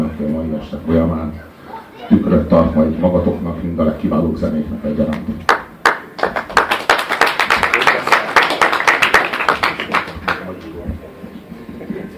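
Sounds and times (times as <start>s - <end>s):
speech: 0.6s - 5.6s
crowd applauding: 5.5s - 10.7s.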